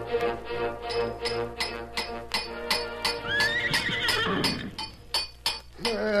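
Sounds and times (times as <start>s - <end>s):
horse hooves clopping: 0.2s - 6.0s
horse whinnying: 3.2s - 4.8s.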